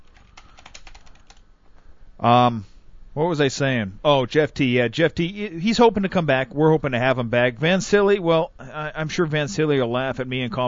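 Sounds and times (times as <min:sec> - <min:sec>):
typing on a computer keyboard: 0:00.0 - 0:01.4
speech: 0:02.2 - 0:10.6.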